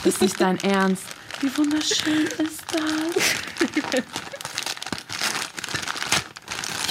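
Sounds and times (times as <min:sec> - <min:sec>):
speech: 0:00.0 - 0:04.4
wrapping paper crinkling and rustling as a gift is unwrapped: 0:00.0 - 0:06.8
wrapping paper tearing: 0:01.5 - 0:06.8
laughter: 0:03.2 - 0:04.6.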